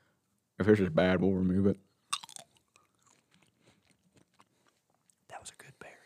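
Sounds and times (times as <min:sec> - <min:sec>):
speech: 0:00.6 - 0:01.9
crisp bites: 0:02.1 - 0:04.8
chewing a blueberry right against the microphone: 0:02.1 - 0:05.3
wet squishy mouth sounds: 0:02.1 - 0:05.3.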